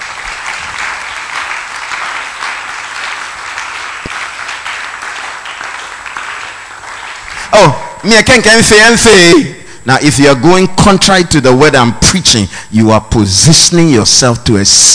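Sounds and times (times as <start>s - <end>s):
congregation clapping and applauding: 0.0s - 8.8s
speech: 7.6s - 14.9s.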